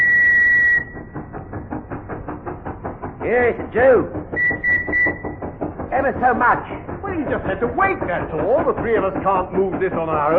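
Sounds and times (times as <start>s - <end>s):
steam train whistle: 0.0s - 1.1s, 4.4s - 5.4s
steam engine chuffing: 0.0s - 10.3s
speech: 3.2s - 4.2s, 5.9s - 10.3s.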